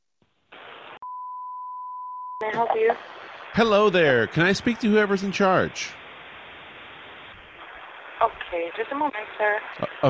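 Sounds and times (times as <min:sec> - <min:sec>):
loud static hiss: 0:00.5 - 0:01.0, 0:02.5 - 0:10.0
speech: 0:02.4 - 0:06.0, 0:08.2 - 0:10.0.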